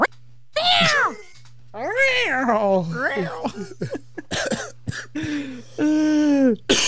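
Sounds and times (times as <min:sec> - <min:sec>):
low steady hum: 0:00.0 - 0:06.8
person imitating cat meows: 0:00.6 - 0:03.1.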